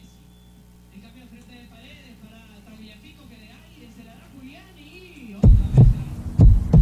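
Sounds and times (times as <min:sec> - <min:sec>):
faint tonal hum: 0:00.0 - 0:06.8
heartbeat sound effect: 0:05.4 - 0:06.8.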